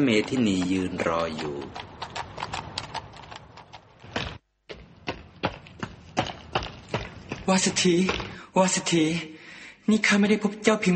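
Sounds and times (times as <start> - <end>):
speech: 0.0 - 2.1, 7.5 - 9.3, 9.9 - 10.9
horse hooves clip-clopping at a hurried gallop toward a temple: 0.0 - 8.4.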